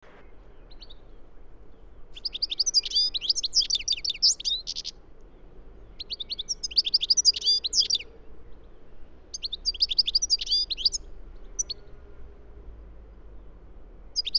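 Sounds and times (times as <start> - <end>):
European goldfinch Carduelis carduelis twittering: 2.2 - 4.9, 6.0 - 8.0, 9.3 - 11.8, 14.2 - 14.3.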